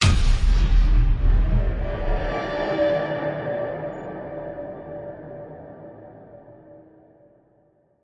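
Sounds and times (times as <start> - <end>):
colored tonal hit: 0.0 - 2.7.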